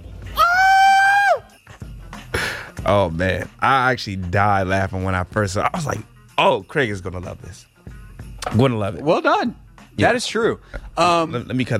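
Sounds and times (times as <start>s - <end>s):
man screaming in a high-pitched soundboard clip: 0.3s - 1.6s
speech: 2.9s - 7.7s, 8.5s - 11.7s.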